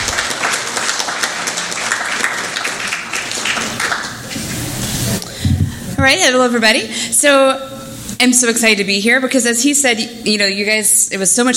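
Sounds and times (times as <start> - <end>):
crowd applauding: 0.0 - 5.3
speech: 6.0 - 11.5.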